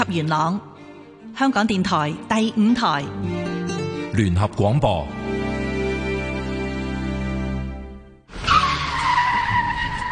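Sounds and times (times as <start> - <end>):
speech: 0.0 - 0.7, 1.4 - 3.4, 4.2 - 5.3
harsh road noise: 5.1 - 10.0
car tires skidding as a vehicle turns at a road crossing: 8.3 - 10.0.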